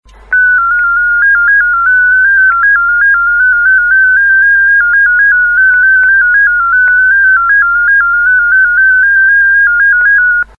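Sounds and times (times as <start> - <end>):
DominoEx8 digital mode radio signal: 0.3 - 10.5.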